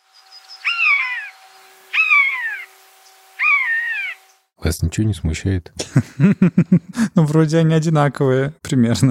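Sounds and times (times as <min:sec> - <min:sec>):
Eurasian jay mimicking buzzard mewing cries: 0:00.6 - 0:02.7, 0:03.4 - 0:04.2
speech: 0:04.6 - 0:09.1
laughter: 0:05.8 - 0:07.2.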